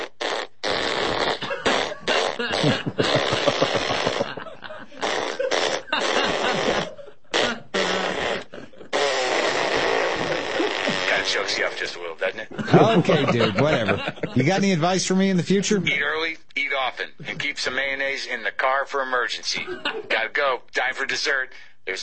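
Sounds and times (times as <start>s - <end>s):
flatulence noises after a chili cheeseburger meal: 0.0s - 4.4s, 5.0s - 11.9s
laughter: 1.4s - 11.5s, 12.5s - 16.0s, 17.1s - 17.6s, 19.6s - 20.2s
speech: 12.4s - 16.4s, 17.4s - 22.0s.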